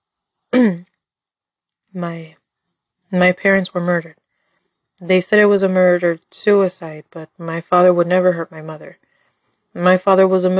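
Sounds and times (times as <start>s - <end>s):
man clearing his throat: 0.6s - 0.8s
speech: 2.0s - 2.4s, 3.1s - 4.2s, 5.0s - 9.0s, 9.8s - 10.5s.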